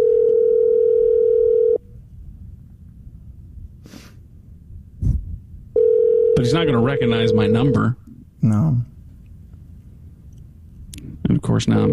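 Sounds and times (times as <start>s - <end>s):
electronic ringback tone from an unanswered phone call: 0.0s - 1.8s, 5.8s - 7.8s
short breathy sniffs: 3.8s - 4.2s
speech: 6.4s - 8.9s, 11.4s - 11.9s.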